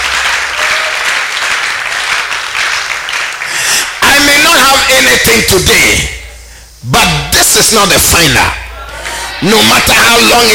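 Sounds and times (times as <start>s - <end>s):
audience clapping loudly: 0.0s - 4.3s, 8.9s - 9.7s
speech: 5.2s - 6.2s, 6.8s - 8.6s, 9.4s - 10.5s.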